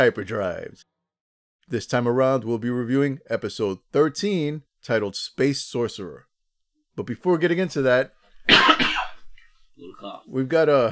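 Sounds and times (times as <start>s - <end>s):
speech: 0.0s - 1.0s, 1.7s - 6.3s, 7.0s - 9.0s, 9.8s - 10.8s
wet mucus-laden cough: 8.5s - 9.3s.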